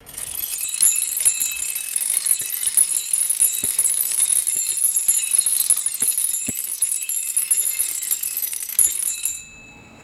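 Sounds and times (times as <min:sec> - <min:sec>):
multiple bicycle bells ringing together: 0:00.0 - 0:10.0.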